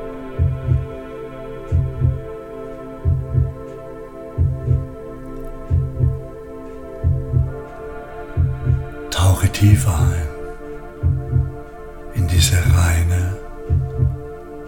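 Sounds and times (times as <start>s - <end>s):
deep steady heartbeat lub-dub thumps: 0.4s - 0.9s, 1.7s - 2.3s, 3.0s - 3.6s, 4.4s - 5.0s, 5.6s - 6.4s, 7.0s - 7.7s, 8.4s - 14.4s
speech: 9.6s - 10.3s, 12.4s - 12.7s.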